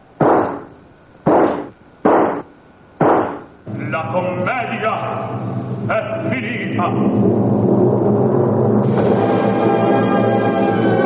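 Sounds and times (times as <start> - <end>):
revolver shots fired at point-blank range: 0.2 - 3.5
speech: 4.0 - 10.2.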